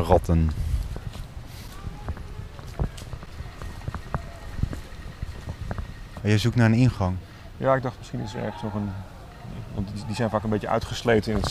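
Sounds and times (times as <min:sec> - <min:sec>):
speech: 0:00.0 - 0:00.6, 0:06.2 - 0:11.4
footsteps crunching outdoors: 0:00.5 - 0:06.3.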